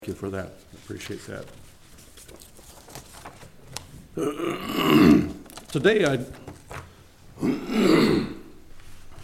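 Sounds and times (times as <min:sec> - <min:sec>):
speech: 0:00.0 - 0:01.6, 0:04.2 - 0:06.4, 0:07.4 - 0:08.4
person clearing throat: 0:04.2 - 0:05.4, 0:07.4 - 0:08.6.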